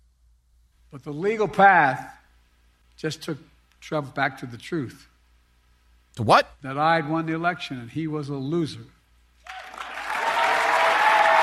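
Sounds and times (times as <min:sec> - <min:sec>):
speech: 0:00.9 - 0:02.2, 0:03.0 - 0:05.1, 0:06.2 - 0:09.0
large crowd cheering and applauding: 0:09.4 - 0:11.4.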